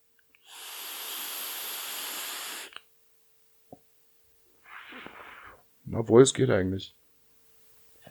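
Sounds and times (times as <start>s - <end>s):
breathy exhale: 0.4s - 2.8s, 4.6s - 5.6s
hissing draw from an e-cigarette with citrus cereal and milk flavoured liquid: 0.4s - 2.9s, 4.6s - 5.6s
speech: 5.9s - 7.0s.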